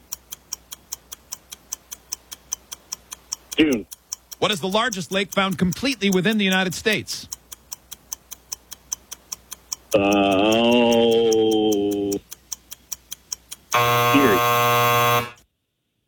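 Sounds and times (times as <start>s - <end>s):
trivia quiz timer ticking: 0.0s - 15.4s
speech: 3.6s - 7.3s
quiz timer buzzer blasts: 13.7s - 15.4s.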